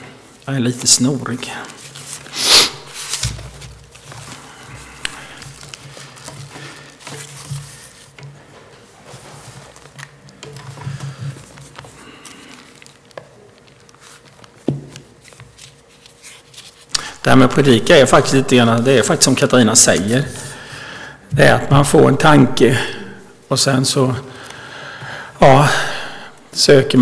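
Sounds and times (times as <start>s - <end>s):
speech: 0.5s - 1.8s, 17.2s - 20.4s, 21.4s - 24.4s, 25.4s - 26.0s, 26.6s - 27.0s
tissue paper rustling as it is pulled out and handled: 1.6s - 10.0s, 11.4s - 16.9s.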